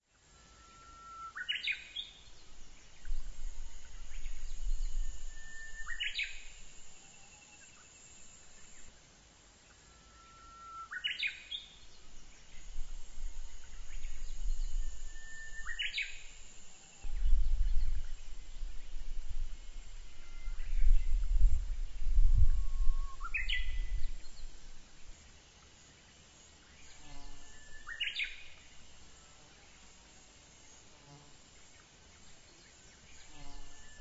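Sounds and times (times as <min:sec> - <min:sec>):
uguisu bush warbler singing: 0:01.4 - 0:08.9, 0:10.9 - 0:24.7, 0:26.7 - 0:28.8.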